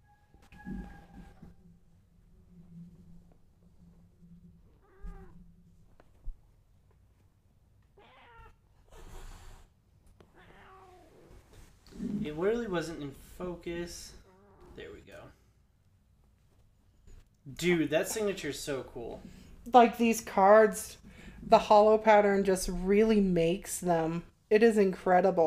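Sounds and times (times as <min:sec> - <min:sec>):
cat meowing drawn-out: 0:04.8 - 0:05.4, 0:07.9 - 0:09.3, 0:10.3 - 0:11.3
speech: 0:12.3 - 0:14.2, 0:17.5 - 0:25.4.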